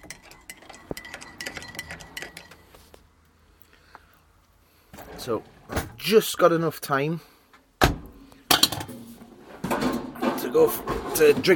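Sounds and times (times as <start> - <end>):
spoon clinking and stirring in a cup: 0.0 - 2.6
speech: 5.2 - 7.3, 10.5 - 11.5.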